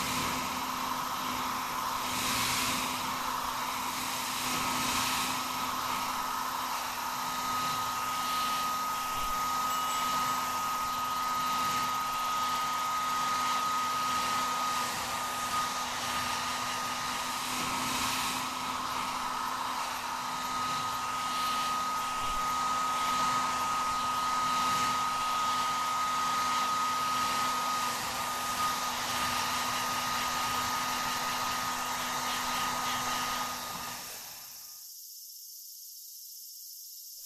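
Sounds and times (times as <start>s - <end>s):
hair dryer blowing away cut hair after a fringe trim: 0.0s - 34.7s.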